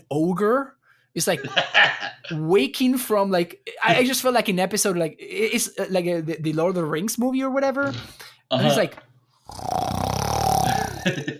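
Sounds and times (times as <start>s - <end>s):
speech: 0.1s - 10.0s, 11.0s - 11.3s
laughter: 1.4s - 2.4s, 10.7s - 11.3s
person imitating a friend's loud snore with their voice: 9.4s - 11.1s.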